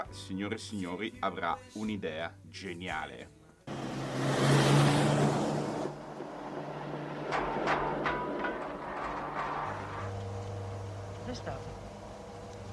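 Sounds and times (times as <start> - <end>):
speech: 0.1 - 3.4
car engine low rumble: 3.7 - 12.7
car road noise: 3.7 - 12.7
car clunks and rattles over an uneven surface: 4.8 - 12.7.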